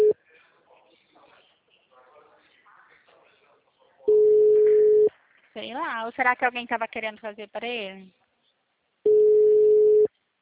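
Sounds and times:
telephone ringing tone while placing a call: 4.1 - 5.1, 9.1 - 10.1
speech: 5.7 - 8.2.

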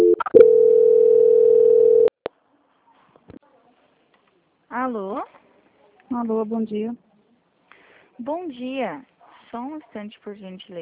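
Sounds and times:
steady telephone tone while a call is transferred: 0.0 - 2.1
speech: 6.2 - 7.0, 8.2 - 10.7.

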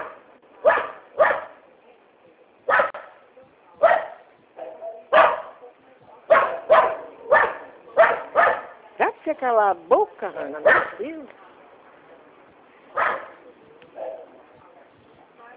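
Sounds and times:
small dog barking: 0.0 - 1.6, 2.7 - 3.2, 3.8 - 5.6, 6.3 - 8.8, 10.6 - 11.0, 13.0 - 13.4
speech: 9.3 - 11.4.

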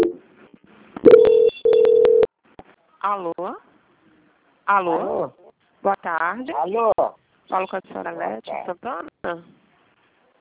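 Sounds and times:
telephone call-transfer tone on a customer-service line: 1.1 - 2.3
speech: 3.0 - 3.7, 4.7 - 9.6.

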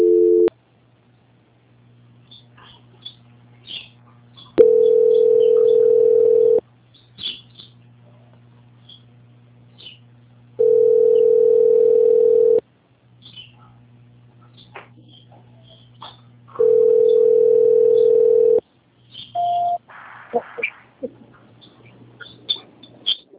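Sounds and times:
telephone tone while a call is being transferred: 0.0 - 0.5, 4.6 - 6.6, 10.6 - 12.6, 16.6 - 18.6, 19.4 - 19.8.

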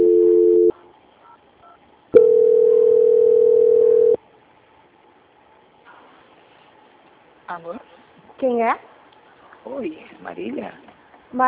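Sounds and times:
telephone line tone while a call is being transferred: 0.0 - 0.7, 2.2 - 4.2
speech: 7.6 - 8.9, 9.6 - 11.4.

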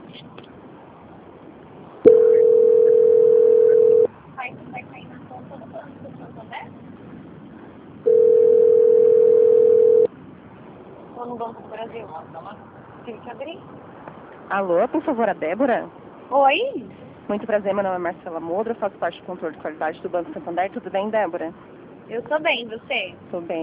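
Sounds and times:
telephone line tone while a call is being transferred: 2.1 - 4.1, 8.0 - 10.1
speech: 12.1 - 13.9, 14.5 - 23.6.

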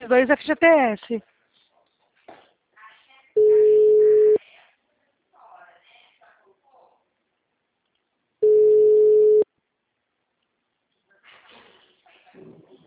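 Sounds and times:
speech: 0.1 - 1.4
telephone busy tone after a dropped call: 3.4 - 4.4, 8.4 - 9.4.

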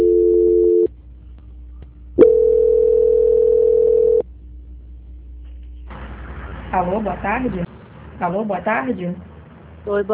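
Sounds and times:
telephone line tone during a call transfer: 0.0 - 0.9, 2.2 - 4.2
speech: 6.8 - 7.6, 8.2 - 10.1.

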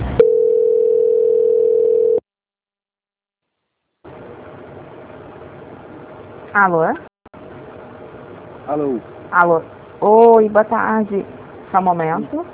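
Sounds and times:
steady mid-pitched telephone tone during a call transfer: 0.2 - 2.3
speech: 6.6 - 7.1, 8.7 - 12.5.

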